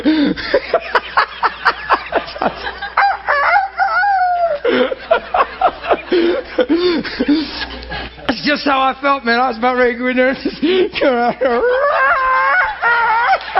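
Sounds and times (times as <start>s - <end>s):
laughter: 0.0s - 8.4s, 10.2s - 13.5s
person imitating a barnyard rooster: 3.0s - 4.6s
speech: 8.6s - 11.8s.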